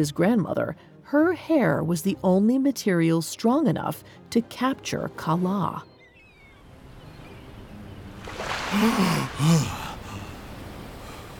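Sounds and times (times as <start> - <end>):
speech: 0.0 - 5.9, 8.3 - 9.8
person gasping for air after surfacing in the ocean: 8.7 - 10.4.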